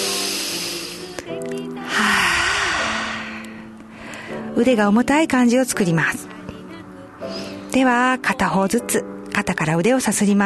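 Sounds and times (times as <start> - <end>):
slow breath drawn in during a relaxation exercise: 0.0 - 1.1, 1.8 - 4.5, 7.2 - 7.7
speech: 4.6 - 6.3, 7.7 - 10.4.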